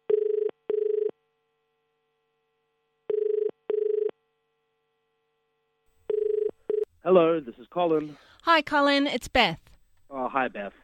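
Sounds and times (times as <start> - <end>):
telephone ringing in a double-pulse pattern: 0.1 - 1.1, 3.1 - 4.1, 6.1 - 6.9
speech: 7.1 - 9.6, 10.2 - 10.8.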